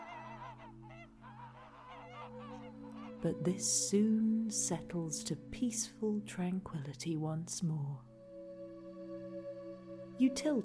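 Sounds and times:
flock of geese honking: 0.0 - 3.8
speech: 3.2 - 8.1, 10.2 - 10.6.

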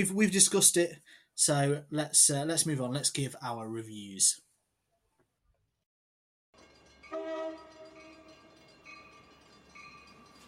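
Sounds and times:
speech: 0.0 - 4.4
rumble and clatter of a train rolling along the tracks: 6.6 - 10.4
train horn blaring in a sustained chord: 7.1 - 8.5.

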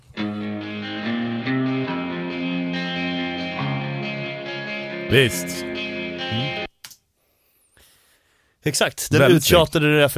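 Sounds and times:
downtuned baritone guitar playing slow chords with echo: 0.0 - 6.7
speech: 5.1 - 6.4, 8.6 - 10.1.

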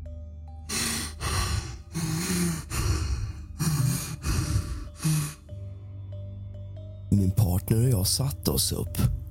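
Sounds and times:
heavy ragged breathing: 0.7 - 5.7
speech: 7.2 - 9.2.

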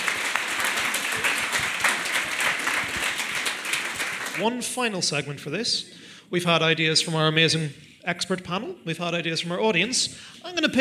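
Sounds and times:
audience applause: 0.0 - 4.6
speech: 4.4 - 10.8.

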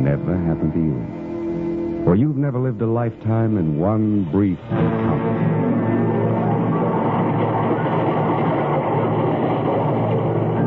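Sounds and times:
speech: 0.1 - 1.3, 2.0 - 5.4
faint rhythmic clatter of train wheels and carriages: 2.9 - 10.6
train rumbling at a railway station: 3.2 - 10.6.

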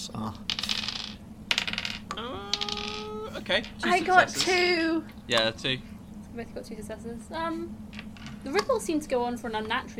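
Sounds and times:
speech: 0.0 - 0.6, 3.5 - 9.9
dice clattering across a hard table: 0.5 - 3.0, 8.0 - 8.4
single die spinning and ringing as it settles: 0.5 - 4.7.

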